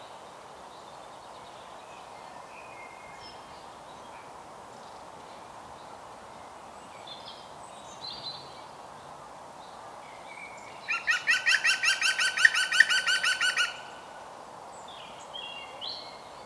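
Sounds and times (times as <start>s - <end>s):
European green woodpecker Picus viridis laughing call: 10.9s - 13.9s.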